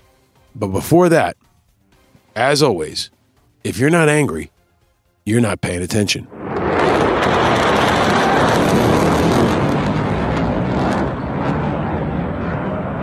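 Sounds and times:
speech: 0:00.6 - 0:01.4, 0:02.4 - 0:04.6, 0:05.3 - 0:06.4
American fighter jet releasing flares over an Afghan airfield: 0:06.3 - 0:13.0.

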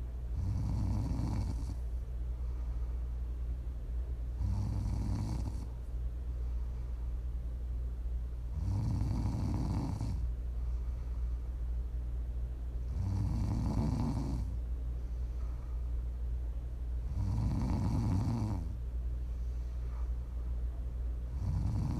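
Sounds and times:
steady low hum: 0:00.0 - 0:21.9
person snoring: 0:00.4 - 0:01.8, 0:04.4 - 0:05.7, 0:08.5 - 0:10.3, 0:12.9 - 0:14.6, 0:17.1 - 0:18.8, 0:21.3 - 0:21.9.

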